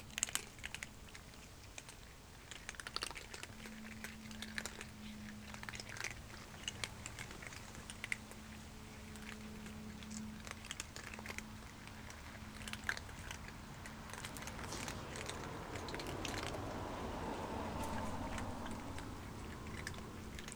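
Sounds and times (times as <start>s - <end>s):
cat eating with crisp clicks and crunches of chewing: 0.2s - 20.5s
steady low hum: 8.5s - 20.5s.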